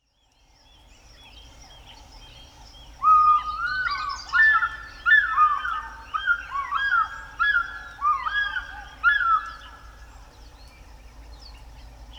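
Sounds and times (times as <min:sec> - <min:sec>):
African fish eagle giving loud ringing yelping calls: 0:03.0 - 0:09.6.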